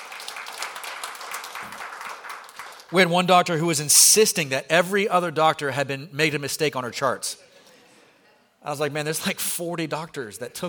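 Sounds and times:
audience clapping: 0:00.0 - 0:03.0
speech: 0:02.9 - 0:07.5, 0:08.6 - 0:10.6.

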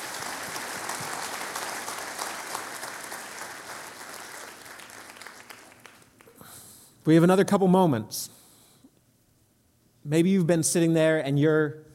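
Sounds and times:
large audience applauding: 0:00.0 - 0:06.4
speech: 0:07.1 - 0:08.4, 0:10.1 - 0:11.9.

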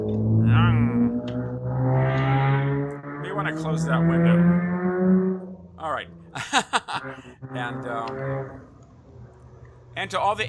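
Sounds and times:
car engine rumbling outside a window: 0:00.0 - 0:10.4
speech: 0:03.6 - 0:04.7, 0:05.8 - 0:08.7, 0:10.0 - 0:10.4
laughter: 0:06.4 - 0:07.3.

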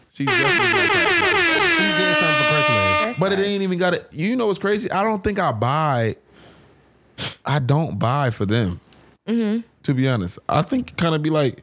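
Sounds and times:
speech: 0:00.2 - 0:01.1, 0:03.2 - 0:06.2, 0:07.2 - 0:11.6
loud blaring air horn blasts: 0:00.2 - 0:03.3.

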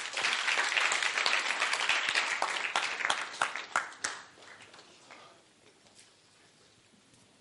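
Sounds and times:
congregation clapping at a church service: 0:00.0 - 0:05.3.

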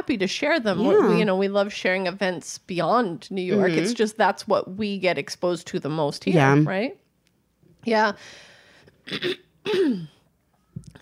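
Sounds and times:
speech: 0:00.0 - 0:07.0, 0:07.8 - 0:08.5, 0:09.1 - 0:10.2
person clearing throat: 0:09.1 - 0:10.2.

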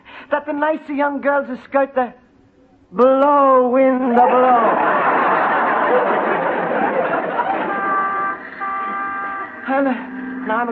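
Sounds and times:
speech: 0:00.3 - 0:02.2, 0:02.9 - 0:05.2, 0:09.7 - 0:10.6
laughter: 0:04.1 - 0:09.0
street traffic noise: 0:06.5 - 0:10.6
speeding car honking its horn: 0:07.4 - 0:10.6.

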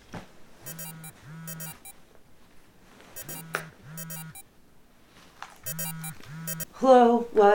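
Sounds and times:
alarm clock with buzzy electronic beeps: 0:00.7 - 0:01.9, 0:03.2 - 0:04.4, 0:05.7 - 0:06.7
speech: 0:06.8 - 0:07.5.

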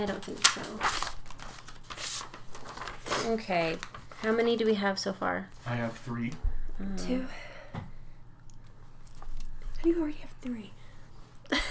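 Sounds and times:
speech: 0:00.0 - 0:01.2, 0:03.2 - 0:07.9, 0:09.8 - 0:10.8
paper sheets rustling and crinkling while shuffled: 0:00.0 - 0:04.5
paper crumpling swish: 0:00.4 - 0:03.4.

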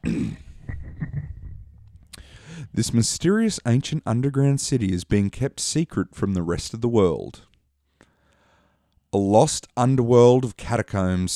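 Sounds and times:
man clearing throat with gravelly rasp and guttural hacks: 0:00.0 - 0:01.2
speech: 0:02.7 - 0:07.5, 0:09.1 - 0:11.3.

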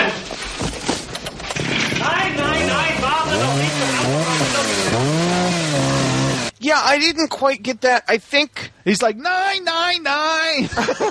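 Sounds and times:
chainsaw cutting through wires: 0:01.3 - 0:06.6
speech: 0:06.7 - 0:11.0
laughter: 0:10.6 - 0:11.0.

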